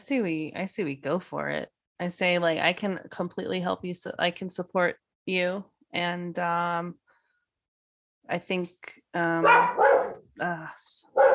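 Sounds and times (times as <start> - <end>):
speech: 0.1 - 7.0, 8.3 - 11.3
dog barking and yelping inside a temple: 9.4 - 10.3, 11.1 - 11.3.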